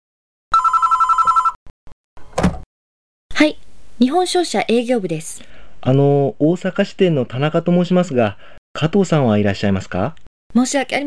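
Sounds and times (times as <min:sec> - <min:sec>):
telephone ringing in a trilling electronic burst: 0:00.5 - 0:01.6
speech: 0:03.4 - 0:11.0.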